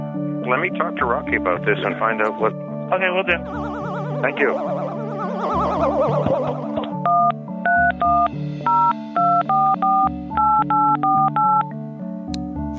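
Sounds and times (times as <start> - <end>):
speech: 0.5 - 6.6
warbling telephone tone: 3.4 - 7.3
telephone keypad dialing an outside line with dual-tone beeps: 3.5 - 11.7.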